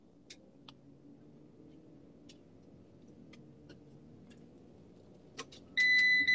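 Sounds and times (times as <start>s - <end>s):
van seatbelt warning beeping: 5.8s - 6.3s.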